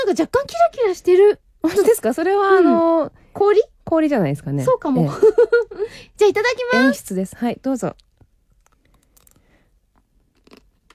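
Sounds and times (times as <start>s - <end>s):
speech: 0.0s - 8.1s
crunching and chewing a chocolate-coated matcha snack: 10.3s - 10.9s.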